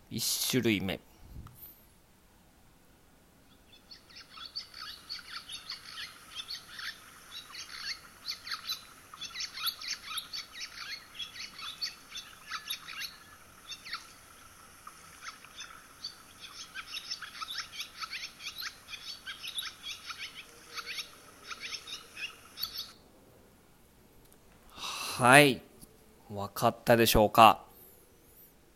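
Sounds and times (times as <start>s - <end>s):
speech: 0.1s - 1.1s, 25.2s - 25.6s, 26.4s - 27.6s
barn swallow twittering song: 3.4s - 23.0s.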